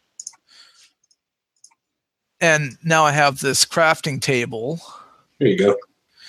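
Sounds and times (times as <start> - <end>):
quiet computer mouse clicks: 0.2 - 0.4
speech: 2.4 - 5.9.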